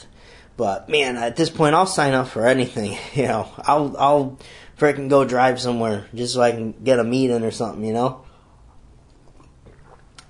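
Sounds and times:
speech: 0.6 - 8.3
person sipping hot coffee: 8.7 - 10.2
person swallowing: 9.1 - 10.2.

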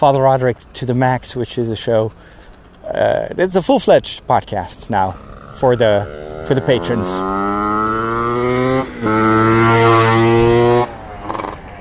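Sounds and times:
speech: 0.0 - 7.6, 9.0 - 9.6
loud buzzing motorbike engine droning in the countryside in Holland: 4.6 - 11.7.

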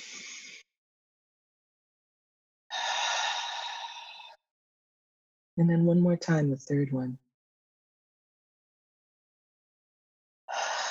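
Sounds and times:
deep breathing during a slow relaxation exercise: 2.7 - 4.4, 10.5 - 10.9
speech: 5.6 - 7.2.

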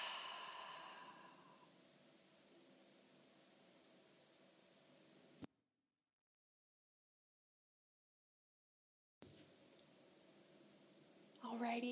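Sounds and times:
long slow breath blown out through the mouth: 0.0 - 1.7
speech: 11.5 - 11.9.

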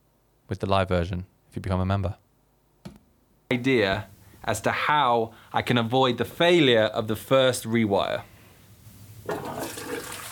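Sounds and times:
speech: 0.5 - 2.2, 3.5 - 8.3
toilet flush: 9.2 - 10.3.

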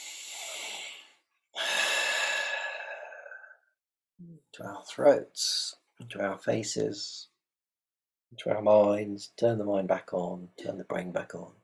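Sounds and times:
deep breaths in during a guided meditation stretch: 0.0 - 3.6
speech: 4.2 - 7.3, 8.3 - 11.6.

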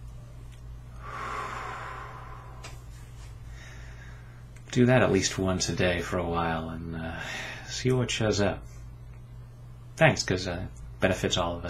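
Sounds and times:
low steady hum: 0.0 - 11.6
slow deep breath drawn during a guided tapping session: 0.9 - 4.5
speech: 4.7 - 8.8, 10.0 - 11.6.

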